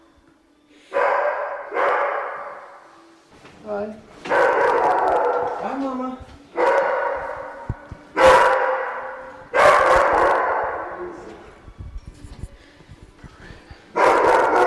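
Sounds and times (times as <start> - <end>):
several dogs barking in an echoing indoor kennel: 0.9 - 2.8, 4.2 - 5.8, 6.5 - 11.2, 13.9 - 14.6.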